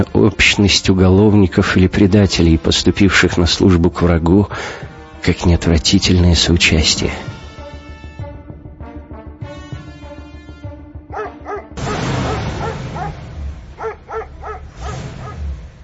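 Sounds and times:
speech: 0.0 - 7.3
whimper-like tonal sounds: 11.1 - 11.7, 13.8 - 15.4
dogs barking in short rough bursts: 11.1 - 15.6
low rumbling background: 11.7 - 15.8.

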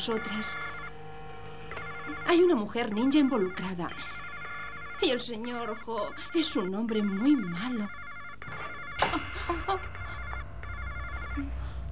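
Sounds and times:
speech: 0.0 - 0.8, 2.1 - 4.2, 5.0 - 10.0, 11.4 - 11.6
electronic telephone ringing in warbling bursts: 0.0 - 11.9.

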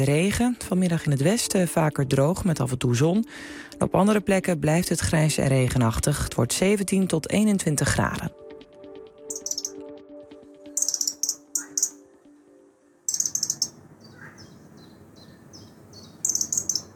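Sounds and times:
speech: 0.0 - 8.4
young robin singing: 8.3 - 16.9.

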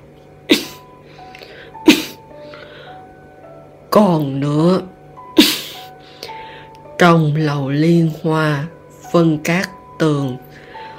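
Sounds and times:
person coughing: 0.5 - 0.9, 1.8 - 2.2
speech: 3.9 - 4.9, 7.0 - 10.6.

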